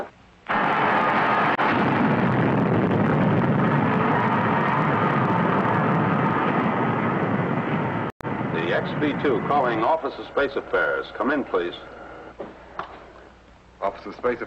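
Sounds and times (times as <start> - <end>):
spacecraft rockets firing for braking after leaving a space station: 0.5 - 11.4
speech: 8.8 - 12.0, 13.8 - 14.4.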